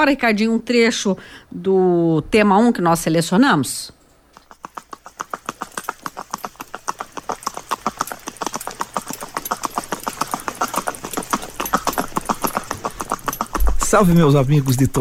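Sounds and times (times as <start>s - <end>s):
speech: 0.0s - 4.0s, 13.9s - 14.9s
horse hooves clip-clopping at a marching gait: 4.3s - 14.9s.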